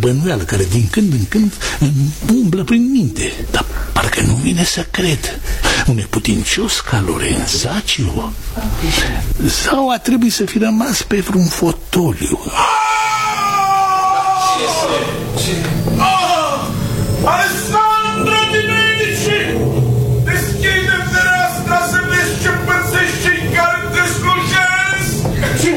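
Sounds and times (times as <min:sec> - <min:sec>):
speech: 0:00.0 - 0:13.1, 0:14.9 - 0:16.1, 0:17.2 - 0:18.8
man howling loudly outside: 0:12.5 - 0:25.6.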